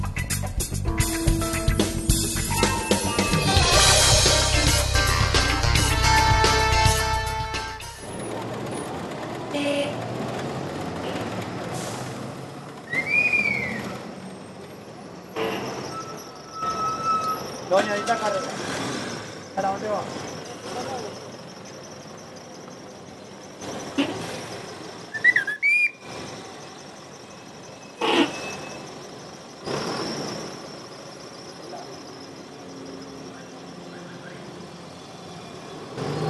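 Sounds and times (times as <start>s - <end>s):
cars and buses passing by on a busy street: 0.0s - 36.2s
brakes squealing: 2.4s - 36.2s
steady street traffic rumble: 3.6s - 36.2s.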